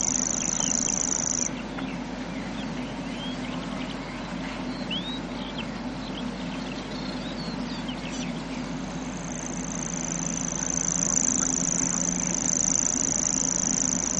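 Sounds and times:
grasshopper warbler song, a sustained high ticking reel: 0:00.0 - 0:01.5, 0:09.2 - 0:14.1
varied chirps from other birds: 0:00.0 - 0:14.1.

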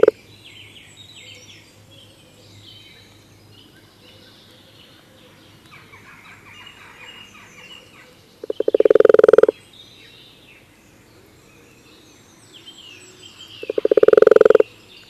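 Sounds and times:
birds chirping: 0:00.0 - 0:15.0
common toad calling: 0:08.4 - 0:09.6, 0:13.6 - 0:14.7.

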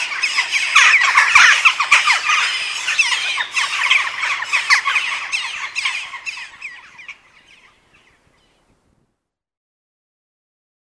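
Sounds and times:
peregrine falcon harsh scratchy chattering: 0:00.0 - 0:07.0.

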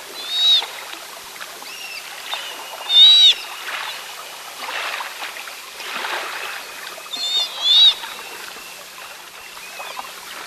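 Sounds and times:
sea otter squealing calls: 0:00.2 - 0:00.7, 0:02.4 - 0:03.5, 0:07.1 - 0:08.3.

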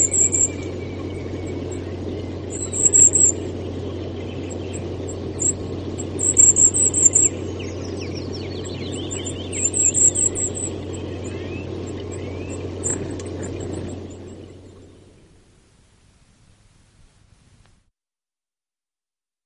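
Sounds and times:
goldcrest singing: 0:00.0 - 0:15.6
constant low rumble: 0:00.0 - 0:16.9.

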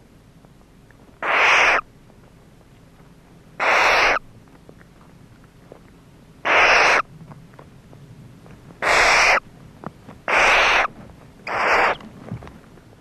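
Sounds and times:
barn owl screeching: 0:01.2 - 0:01.8, 0:03.6 - 0:04.2, 0:06.4 - 0:07.1, 0:08.8 - 0:09.4, 0:10.3 - 0:10.9, 0:11.5 - 0:12.0.

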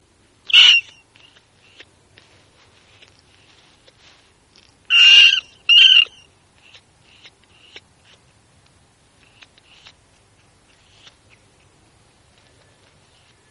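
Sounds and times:
brown rat squeaks: 0:00.5 - 0:01.9, 0:04.9 - 0:08.2, 0:09.2 - 0:10.0.

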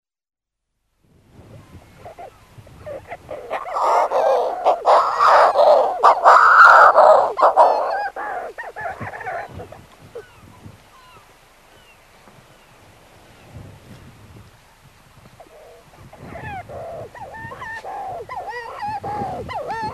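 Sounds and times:
Manx shearwater calls: 0:02.1 - 0:12.0, 0:15.5 - 0:19.9.

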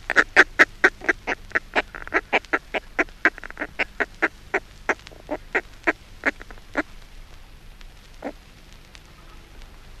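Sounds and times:
northern fulmar cackling call: 0:00.0 - 0:06.9.

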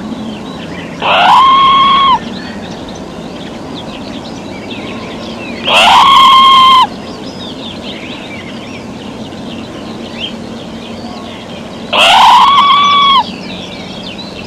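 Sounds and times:
twittering birdsong: 0:00.0 - 0:14.4
red squirrel giving loud drawn-out calls: 0:00.9 - 0:02.6, 0:05.6 - 0:07.0, 0:11.2 - 0:13.7.

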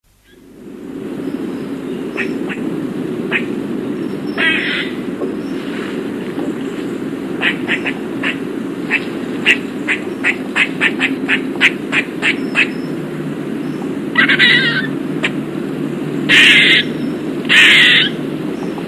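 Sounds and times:
low background hum: 0:00.0 - 0:18.8
Eastern gray squirrel rasping buzzy calls: 0:02.1 - 0:05.5, 0:07.2 - 0:18.8.

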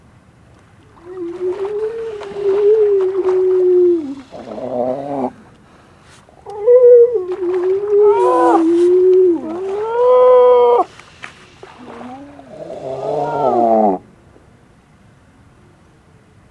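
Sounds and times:
grey seal wailing calls: 0:01.0 - 0:05.4, 0:06.4 - 0:10.9, 0:11.6 - 0:14.0.

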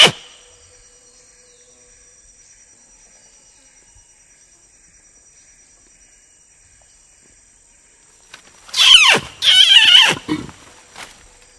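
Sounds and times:
Sumatran orangutan squealing calls: 0:00.0 - 0:00.3, 0:08.7 - 0:10.6.

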